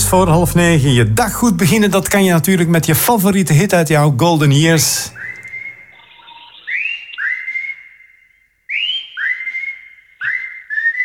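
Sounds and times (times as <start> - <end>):
speech: 0.1 - 5.2
person whistling a song tune: 5.1 - 6.0, 6.6 - 11.0.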